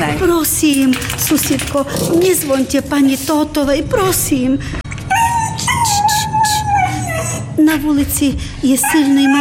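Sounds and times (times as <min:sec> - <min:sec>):
speech: 0:00.0 - 0:04.8, 0:07.6 - 0:09.3
cold dog whining and howling on a frosty street at night: 0:05.0 - 0:07.6, 0:08.8 - 0:09.3.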